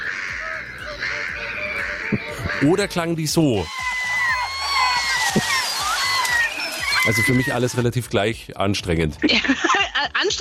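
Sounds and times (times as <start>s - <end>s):
several gulls calling: 0.0s - 7.9s
speech: 2.1s - 3.8s, 7.1s - 10.3s
laughter: 9.2s - 10.3s.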